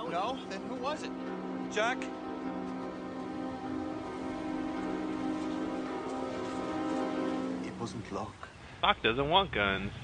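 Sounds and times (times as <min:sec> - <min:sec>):
speech: 0:00.1 - 0:02.6, 0:07.8 - 0:10.0
heavy rain falling: 0:02.8 - 0:08.4.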